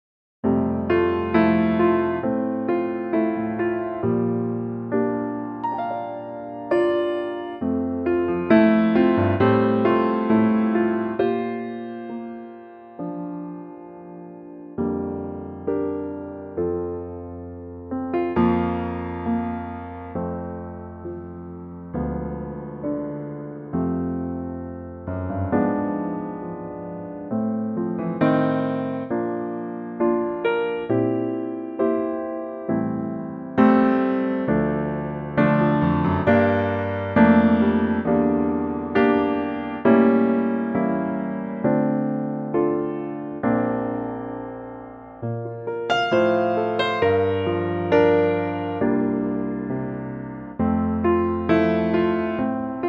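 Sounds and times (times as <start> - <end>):
piano playing F: 0.4 - 52.8.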